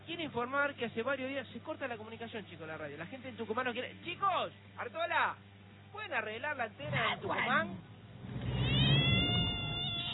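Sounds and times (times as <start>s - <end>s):
speech: 0.2s - 8.4s
cat yowling: 8.4s - 10.1s.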